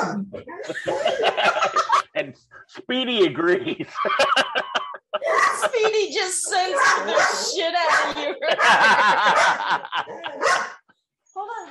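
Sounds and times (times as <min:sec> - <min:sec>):
laughter: 0:00.0 - 0:10.7
speech: 0:00.1 - 0:01.1, 0:02.9 - 0:04.6, 0:05.8 - 0:10.0
dog barking and yapping: 0:05.2 - 0:05.7, 0:06.6 - 0:10.8.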